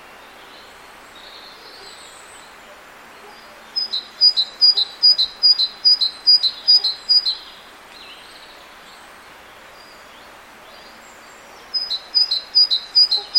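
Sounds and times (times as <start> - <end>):
soft insect-like background noise: 0.0 - 13.3
great tit Parus major singing two-note phrases: 3.2 - 7.6, 11.6 - 13.3.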